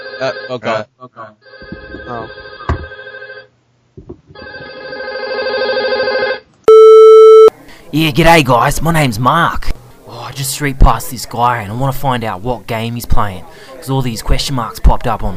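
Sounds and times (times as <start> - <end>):
telephone ringing in long warbling bursts: 0.0 - 0.6, 1.4 - 3.5, 4.4 - 7.5
speech: 0.2 - 2.5, 7.9 - 15.3.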